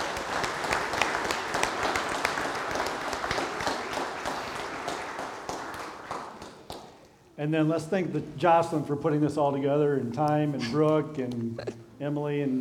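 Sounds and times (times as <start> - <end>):
crowd clapping: 0.0 - 7.1
speech: 7.4 - 12.5.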